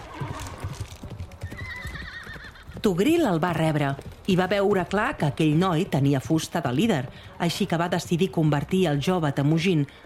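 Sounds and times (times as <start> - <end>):
horse whinnying: 0.0 - 2.9
horses galloping in a dramatized scene of riders setting off: 0.0 - 10.0
speech: 2.8 - 10.0.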